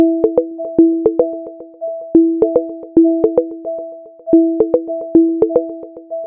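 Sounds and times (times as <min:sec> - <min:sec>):
HomePod smart speaker alarm electronic chime: 0:00.0 - 0:01.5, 0:02.2 - 0:03.6, 0:04.3 - 0:05.8.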